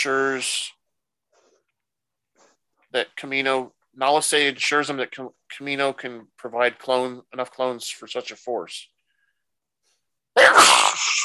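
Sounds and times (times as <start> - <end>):
speech: 0.0 - 0.8, 2.9 - 8.9, 10.4 - 11.2
person sneezing: 10.4 - 11.2.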